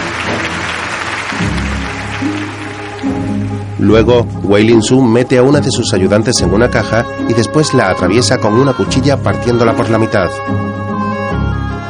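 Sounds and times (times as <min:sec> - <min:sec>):
audience at a stage magic show applauding: 0:00.0 - 0:04.0
low gliding musical tones: 0:00.0 - 0:10.6
speech: 0:03.8 - 0:10.8.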